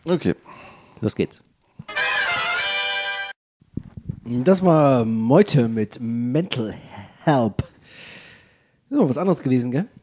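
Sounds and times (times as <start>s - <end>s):
speech: 0.0s - 2.0s, 4.2s - 7.7s, 8.9s - 10.0s
brass marching band music: 1.9s - 3.4s.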